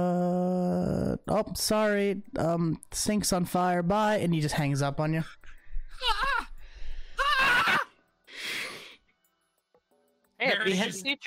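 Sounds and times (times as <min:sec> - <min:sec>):
person screaming in anguish: 0:00.0 - 0:01.2, 0:06.0 - 0:06.6
speech: 0:01.4 - 0:06.2, 0:10.6 - 0:11.2
wavering strained wailing cries: 0:07.2 - 0:07.9.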